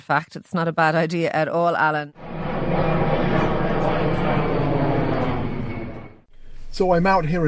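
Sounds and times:
speech: 0.0s - 2.9s, 6.8s - 7.4s
distant airplane engine drone overhead: 2.1s - 6.5s.

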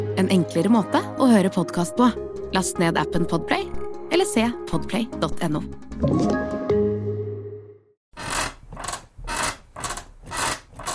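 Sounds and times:
speech: 0.2s - 6.6s
bed creaking: 8.1s - 10.9s.

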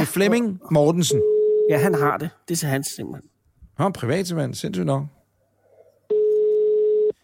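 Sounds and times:
speech: 0.0s - 5.2s
telephone ringing tone, loud steady electronic beep: 1.2s - 1.8s, 6.1s - 7.2s.

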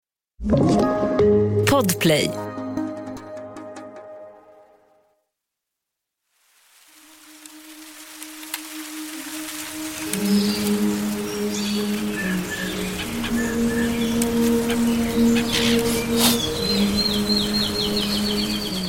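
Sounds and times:
speech: 0.4s - 2.5s
birds singing and chirping: 10.0s - 18.8s.

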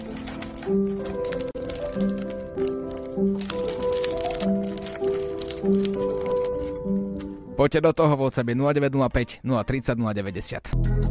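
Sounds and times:
knife cutting open a croissant: 0.0s - 7.4s
speech: 0.7s - 1.2s, 7.6s - 11.0s.

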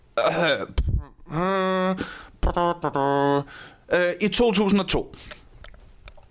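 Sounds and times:
drawn-out throaty vocal sound: 0.2s - 3.6s
speech: 0.2s - 5.4s.

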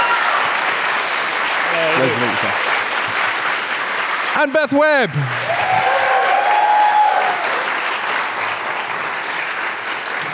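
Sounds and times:
large crowd applauding: 0.0s - 10.3s
speech: 2.0s - 2.7s, 4.4s - 5.7s
crowd whooping: 5.0s - 7.8s.

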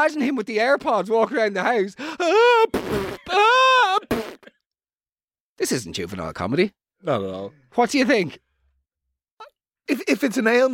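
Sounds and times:
speech: 0.0s - 3.4s, 5.6s - 8.5s, 9.9s - 10.7s
voice imitating sobbing: 2.0s - 4.4s.

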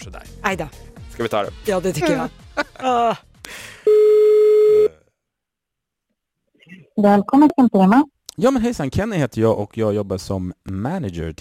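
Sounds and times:
speech: 0.0s - 3.3s, 7.0s - 11.3s
telephone ringing tone while calling a hotel: 3.9s - 4.9s.

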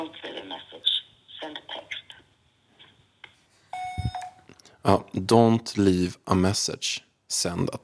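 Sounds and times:
phone line ringing tone on unanswered outgoing call: 3.8s - 4.4s
speech: 4.8s - 7.8s.

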